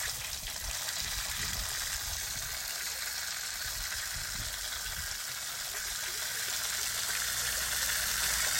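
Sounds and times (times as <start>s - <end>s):
water dragon spitting a jet of water in the sewers: 0.0s - 8.5s.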